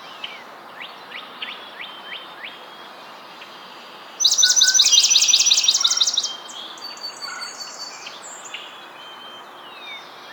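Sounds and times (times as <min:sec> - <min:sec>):
Swamp Sparrow Melospiza georgiana song: 0:04.2 - 0:08.7.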